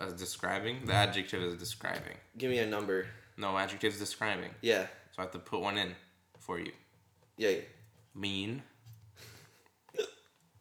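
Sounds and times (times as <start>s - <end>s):
speech: 0.0s - 6.8s, 7.4s - 9.3s
hiccup: 9.9s - 10.3s.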